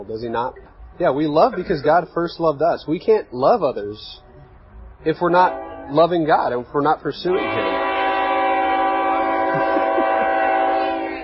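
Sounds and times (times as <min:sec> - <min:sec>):
speech: 0:00.0 - 0:04.2, 0:05.0 - 0:07.7
low rumble of passing train: 0:00.0 - 0:11.2
laughter: 0:01.3 - 0:02.1, 0:09.3 - 0:11.0
passing train horn: 0:05.3 - 0:06.2, 0:07.2 - 0:11.2.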